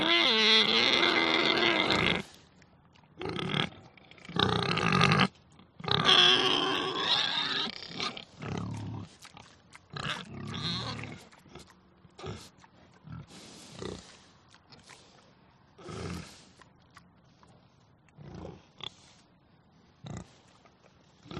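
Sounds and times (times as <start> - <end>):
pig grunting: 0.0 - 2.4, 3.2 - 15.1, 15.8 - 16.5, 18.2 - 19.1, 21.2 - 21.3.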